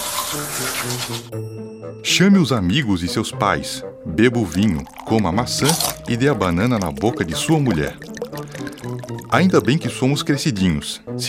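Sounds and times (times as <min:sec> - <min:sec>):
running shower water: 0:00.0 - 0:01.3
soft music: 0:00.0 - 0:11.2
speech: 0:00.3 - 0:11.2.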